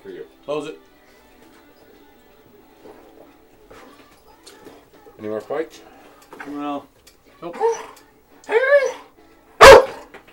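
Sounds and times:
speech: 0.5s - 0.9s, 5.2s - 8.9s
dog whining yelp: 7.5s - 10.0s.

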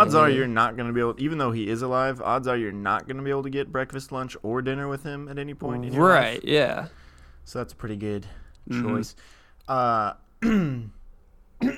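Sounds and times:
speech: 0.0s - 11.0s, 11.6s - 11.7s
phlegmy throat clearing: 10.4s - 11.0s, 11.6s - 11.7s.

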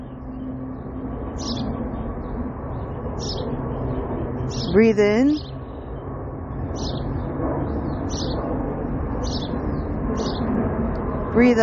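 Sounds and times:
loud outdoor rumble: 0.0s - 11.6s
faint high bird chirps: 1.2s - 1.8s, 3.2s - 3.6s, 4.4s - 5.6s, 6.7s - 8.5s, 9.2s - 10.5s
speech: 4.7s - 5.5s, 11.4s - 11.6s.

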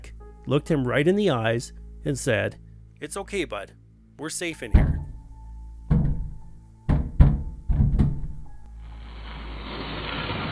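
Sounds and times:
speech: 0.5s - 4.9s
heavy thuds on a wooden door: 4.7s - 5.3s, 5.9s - 8.5s
harsh scraping noise: 8.8s - 10.5s.

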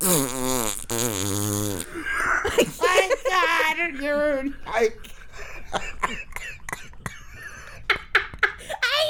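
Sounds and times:
person vocally imitating a loud sustained fart: 0.0s - 2.0s
laughter: 1.9s - 9.0s
speech: 3.5s - 5.1s.

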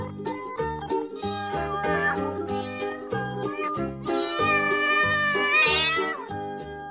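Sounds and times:
cat meowing: 1.2s - 6.3s.

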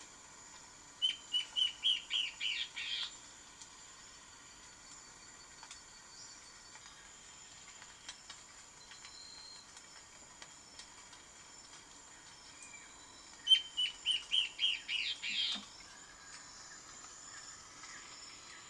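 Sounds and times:
faint hiss: 0.0s - 18.6s
Peruvian warbling antbird song: 1.0s - 3.1s, 12.5s - 16.0s.

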